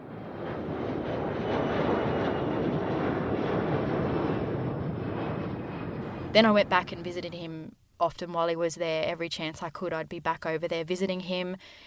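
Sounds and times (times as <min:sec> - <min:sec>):
airplane engine droning: 0:00.0 - 0:07.7
speech: 0:06.3 - 0:11.8.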